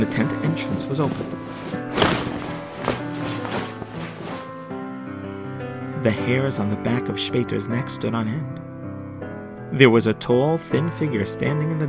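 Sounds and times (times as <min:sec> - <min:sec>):
speech: 0:00.0 - 0:01.7, 0:06.0 - 0:08.6, 0:09.7 - 0:11.8
slow heavy footsteps at night: 0:01.0 - 0:04.7.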